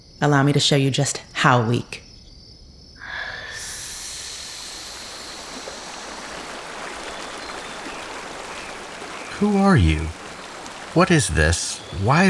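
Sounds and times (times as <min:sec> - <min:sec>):
speech: 0:00.2 - 0:02.0, 0:09.4 - 0:10.2, 0:10.9 - 0:12.2
river water rushing and flowing: 0:03.4 - 0:12.2.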